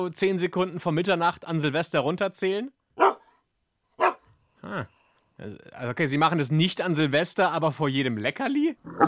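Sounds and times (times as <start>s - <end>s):
speech: 0.0s - 2.8s, 4.7s - 9.0s
dog barking: 3.0s - 3.4s, 4.0s - 4.3s.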